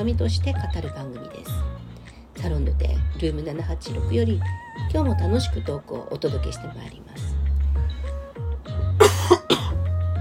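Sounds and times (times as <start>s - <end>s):
speech: 0.0s - 7.4s
quiet tonal background: 0.0s - 9.0s
person with a persistent cough coughing: 9.0s - 9.9s.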